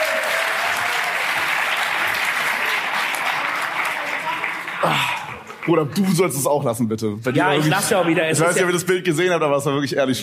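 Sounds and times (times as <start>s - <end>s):
audience applause: 0.0s - 6.5s
speech: 4.8s - 10.2s.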